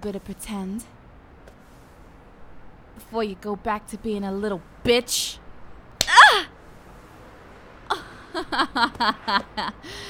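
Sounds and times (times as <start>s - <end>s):
speech: 0.0s - 1.0s, 3.0s - 5.4s, 8.4s - 10.0s
light sharp playful slap: 6.0s - 6.2s
short whimpering vocal bursts: 6.0s - 6.5s
person gasping: 9.8s - 10.0s.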